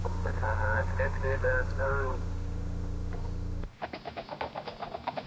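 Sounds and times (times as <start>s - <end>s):
horse galloping: 0.0s - 3.7s.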